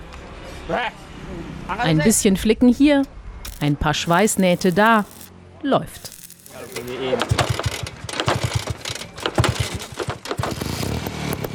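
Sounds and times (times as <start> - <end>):
speech: 0.7 - 6.1, 6.7 - 7.6
old Vespa scooter engine running: 6.2 - 11.3.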